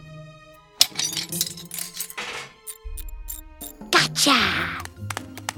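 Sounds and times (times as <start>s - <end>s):
metal hubcap dropped by a little dog clattering into a bathtub: 0.8s - 2.3s
speech: 4.3s - 4.7s.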